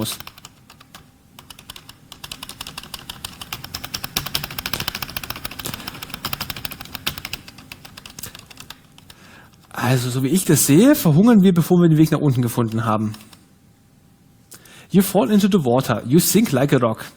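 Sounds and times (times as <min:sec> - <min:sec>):
speech: 0:00.0 - 0:00.3, 0:09.8 - 0:13.3, 0:14.9 - 0:17.1
typing on a computer keyboard entering commands in a text game: 0:00.0 - 0:09.2.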